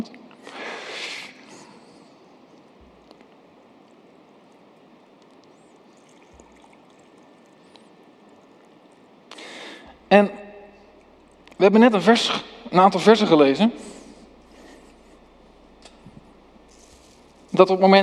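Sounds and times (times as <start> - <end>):
water pouring into two cups: 5.8 - 9.9
speech: 10.1 - 10.4, 11.6 - 13.9, 17.6 - 18.0.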